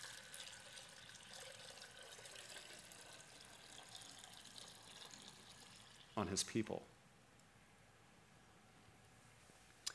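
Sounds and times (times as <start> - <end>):
water pouring: 0.0 - 6.5
speech: 6.2 - 7.0.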